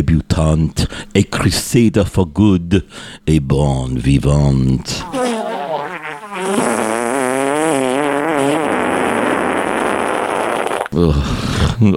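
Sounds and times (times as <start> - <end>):
speech: 0.0 - 5.3, 11.0 - 11.9
long loud buzzing warbling fart: 5.0 - 11.0.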